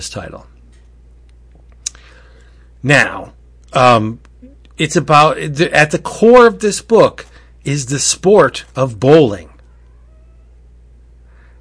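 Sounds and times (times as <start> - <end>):
speech: 0.0 - 0.6, 2.8 - 9.5
low hum: 0.0 - 11.5
cat meowing: 9.6 - 10.6.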